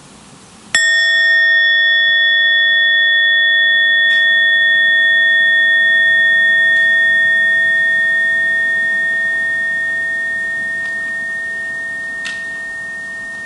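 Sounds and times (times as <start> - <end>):
meditation bell struck and ringing: 0.8 - 13.4.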